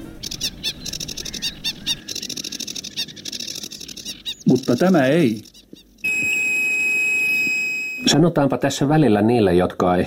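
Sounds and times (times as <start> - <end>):
sedge warbler singing: 0.0 - 7.4
speech: 4.5 - 5.5, 8.1 - 10.0.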